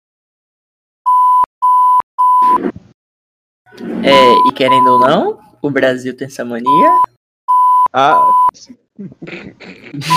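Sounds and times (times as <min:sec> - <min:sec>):
loud steady censor bleeps: 0:01.1 - 0:02.6, 0:04.1 - 0:05.2, 0:06.6 - 0:08.6
speech: 0:03.8 - 0:07.2, 0:07.9 - 0:10.1.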